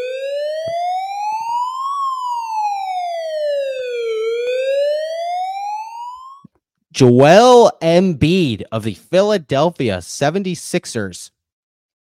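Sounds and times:
emergency siren wailing: 0.0 - 6.5
speech: 7.0 - 11.4.

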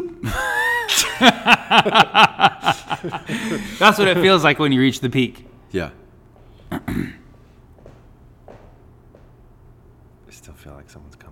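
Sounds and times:
laughter: 0.2 - 4.4
speech: 1.2 - 6.0, 6.8 - 7.2
crunching footsteps: 7.7 - 9.4.

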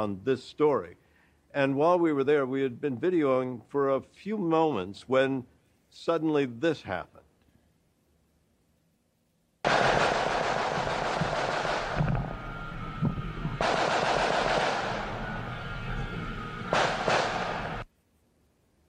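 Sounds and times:
speech: 0.0 - 7.2
semi-automatic gunfire: 9.6 - 12.7, 13.6 - 15.4, 16.7 - 17.8.

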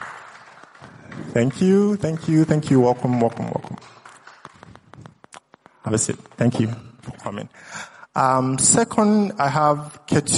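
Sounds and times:
soft audience applause: 0.0 - 3.3
speech: 1.3 - 3.9, 5.9 - 10.3.

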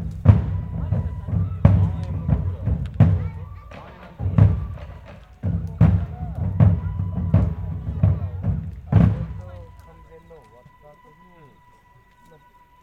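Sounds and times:
booming dance music at a live venue: 0.0 - 10.0
voices murmuring faintly in the crowd: 0.0 - 12.8.

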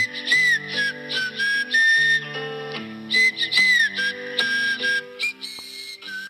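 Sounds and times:
light plucked instrumental backing: 0.0 - 6.2
phone alarm playing a whistled movie tune: 0.0 - 6.2.

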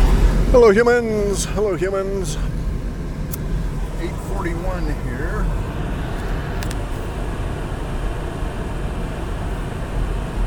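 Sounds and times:
vehicle cabin road and engine drone while driving: 0.0 - 10.4
speech: 0.5 - 2.6, 4.0 - 5.7.

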